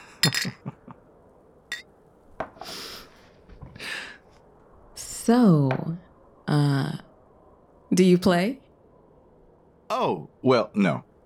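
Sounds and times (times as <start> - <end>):
glasses clinking in a toast: 0.2 - 0.6
speech: 5.3 - 7.1, 8.0 - 8.6, 9.9 - 11.1.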